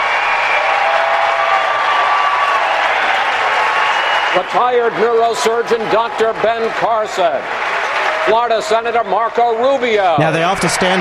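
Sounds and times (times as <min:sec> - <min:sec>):
applause: 0:00.0 - 0:10.9
large crowd cheering: 0:00.0 - 0:10.9
whistles: 0:03.7 - 0:04.4
speech: 0:04.4 - 0:10.9.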